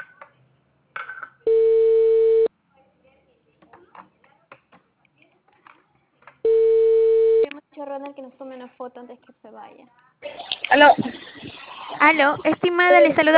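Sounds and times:
electronic telephone ring tone: 1.5s - 2.5s, 6.5s - 7.5s
speech: 8.0s - 13.3s.

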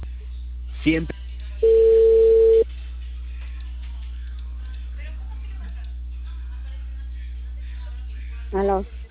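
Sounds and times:
speech: 0.8s - 1.8s, 8.6s - 9.0s
telephone line tone after a call hangs up: 1.6s - 2.6s.

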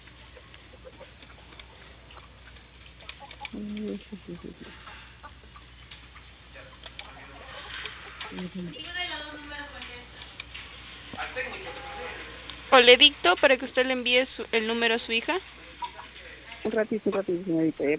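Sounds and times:
hen clucking: 0.0s - 5.8s, 6.7s - 8.8s
speech: 3.5s - 4.9s, 8.4s - 9.4s, 12.7s - 15.5s, 16.6s - 17.9s.

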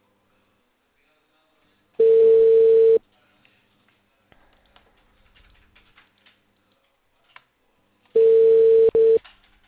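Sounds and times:
electronic phone ringback tone: 2.0s - 3.0s, 8.2s - 9.2s.

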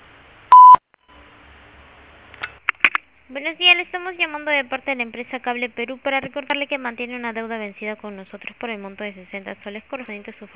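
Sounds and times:
quiet phone line hiss: 0.0s - 10.5s
voicemail beep tone before message recording: 0.5s - 1.2s
speech: 3.3s - 10.5s.

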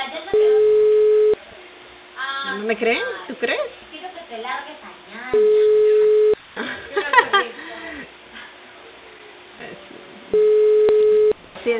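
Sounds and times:
telephone ringback tone on an unanswered call: 0.3s - 1.4s, 5.4s - 6.4s, 10.4s - 11.4s
speech: 2.7s - 4.4s
laughter: 6.6s - 8.1s.

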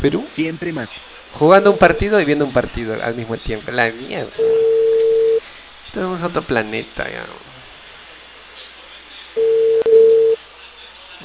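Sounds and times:
speech: 0.0s - 5.1s, 6.0s - 7.5s
telephone busy signal beep: 1.7s - 2.0s, 4.4s - 5.4s, 9.4s - 10.4s.

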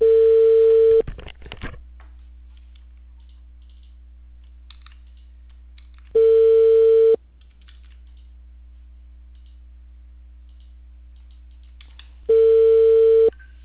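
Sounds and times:
telephone ringback tone while an outgoing call is placed: 0.0s - 1.0s, 6.2s - 7.2s, 12.3s - 13.3s
quiet hum: 0.0s - 13.6s.

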